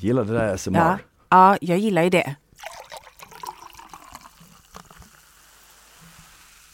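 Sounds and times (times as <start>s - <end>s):
speech: 0.0s - 2.4s
carbonated drink pouring into a glass: 2.6s - 6.7s.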